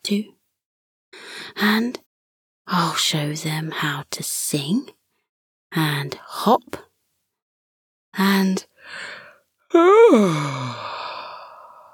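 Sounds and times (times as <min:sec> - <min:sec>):
speech: 0:00.1 - 0:00.4, 0:01.6 - 0:02.0, 0:02.7 - 0:05.0, 0:05.7 - 0:06.9, 0:08.2 - 0:10.9
big yawn: 0:09.7 - 0:11.9.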